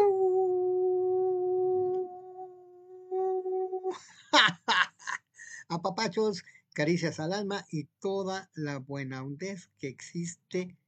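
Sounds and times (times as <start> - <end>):
person howling imitating a wolf: 0.0 - 4.0
speech: 5.7 - 10.8.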